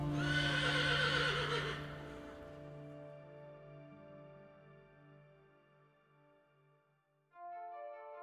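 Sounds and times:
horse neighing: 0:00.1 - 0:02.5.

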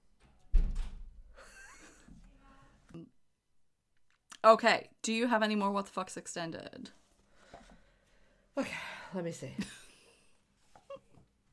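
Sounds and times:
door shutting with a thud: 0:00.2 - 0:01.3
speech: 0:04.4 - 0:07.0, 0:08.6 - 0:09.8.

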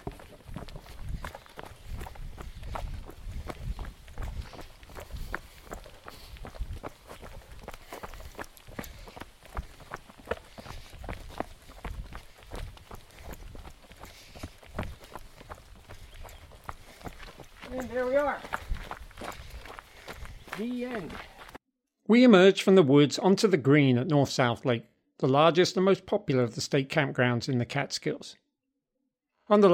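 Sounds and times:
two people's footsteps jogging on a flat forest trail: 0:00.0 - 0:21.6
speech: 0:17.8 - 0:18.5, 0:20.6 - 0:21.3, 0:22.1 - 0:28.4, 0:29.5 - 0:29.7.

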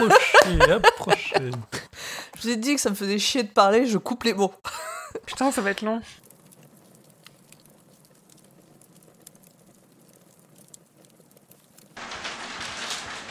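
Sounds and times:
laughter: 0:00.0 - 0:01.9
speech: 0:00.0 - 0:06.2
large hailstones striking window glass: 0:05.4 - 0:13.2.

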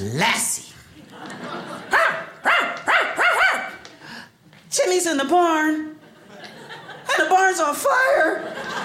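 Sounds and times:
speech: 0:00.0 - 0:01.7, 0:04.9 - 0:06.0, 0:07.2 - 0:08.8
laughter: 0:01.0 - 0:02.4, 0:06.0 - 0:08.8
man imitating a dog barking: 0:01.9 - 0:03.8.

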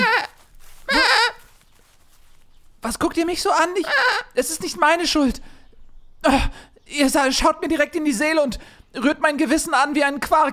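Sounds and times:
goats bleating: 0:00.0 - 0:01.6
speech: 0:02.9 - 0:05.6, 0:06.2 - 0:10.5.

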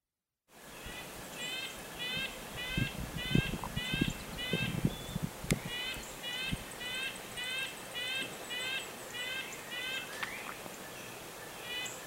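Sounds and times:
red-breasted nuthatch giving short nasal tooting calls: 0:00.8 - 0:10.5, 0:11.6 - 0:12.0.

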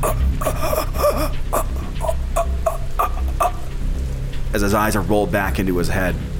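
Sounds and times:
voice imitating a man choking and gasping: 0:00.0 - 0:03.8
speech: 0:04.6 - 0:06.3.

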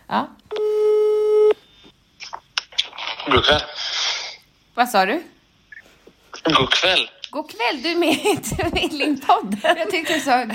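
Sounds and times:
speech: 0:00.1 - 0:00.4, 0:03.3 - 0:03.8, 0:04.8 - 0:05.3, 0:06.4 - 0:10.5
telephone line tone while a call is placed: 0:00.5 - 0:01.6.

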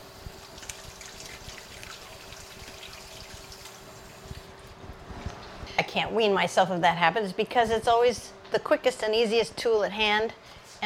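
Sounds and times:
tap water running: 0:00.0 - 0:04.5
speech: 0:06.0 - 0:10.8.

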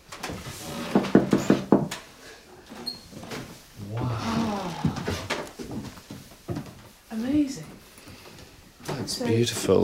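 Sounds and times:
old wooden floorboards creaking underfoot: 0:00.0 - 0:09.8
shuffling footsteps: 0:03.1 - 0:09.8
speech: 0:09.2 - 0:09.8.

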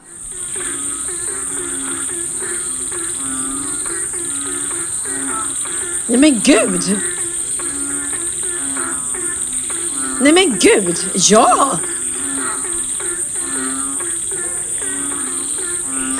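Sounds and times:
dense chorus of frogs croaking at night: 0:00.0 - 0:16.1
speech: 0:06.1 - 0:07.1, 0:10.2 - 0:12.0
person's brief excited exclamations: 0:10.2 - 0:11.8.

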